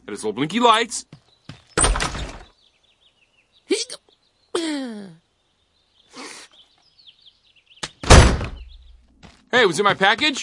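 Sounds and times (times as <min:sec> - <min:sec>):
speech: 0:00.1 - 0:01.2, 0:09.6 - 0:10.4
heavy door slam: 0:08.0 - 0:08.6
door shutting with a loud thud: 0:08.0 - 0:08.7.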